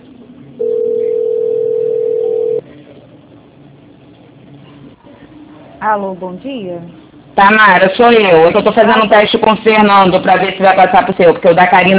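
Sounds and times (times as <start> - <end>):
telephone ringing tone while an office call is being transferred: 0.6 - 2.6
speech: 5.8 - 11.9.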